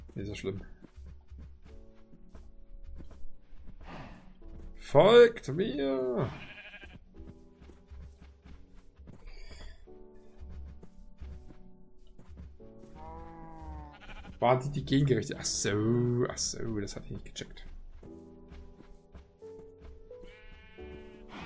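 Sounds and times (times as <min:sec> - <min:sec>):
speech: 0:00.2 - 0:00.8, 0:04.8 - 0:06.5, 0:14.4 - 0:17.7
sheep bleating in a video game: 0:05.1 - 0:07.2, 0:12.8 - 0:16.6, 0:20.2 - 0:21.4.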